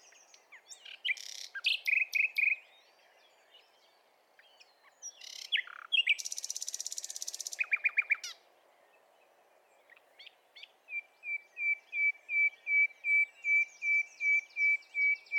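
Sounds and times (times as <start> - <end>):
common nightingale Luscinia megarhynchos singing: 0.0 - 15.3.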